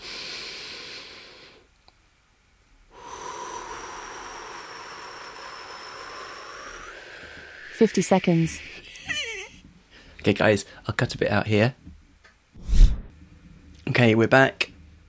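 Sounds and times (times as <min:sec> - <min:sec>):
loud breathing in and out through the nose: 0:00.0 - 0:01.7, 0:02.9 - 0:08.9
speech: 0:07.8 - 0:08.8, 0:10.2 - 0:11.8, 0:14.0 - 0:14.6.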